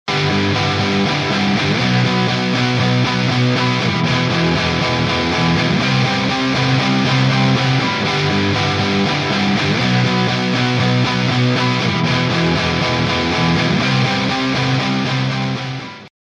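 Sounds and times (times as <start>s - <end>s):
shepard tone on dry guitar: 0.1s - 16.1s.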